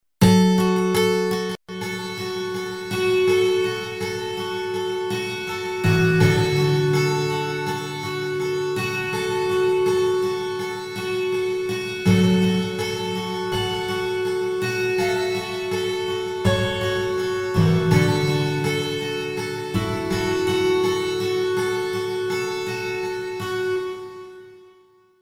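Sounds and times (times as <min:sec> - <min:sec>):
guitar with reverb from a Boss SX700: 0:00.2 - 0:24.9.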